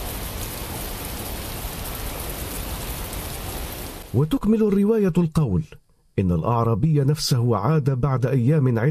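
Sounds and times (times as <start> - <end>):
steady rain: 0.0 - 4.6
speech: 4.1 - 8.8.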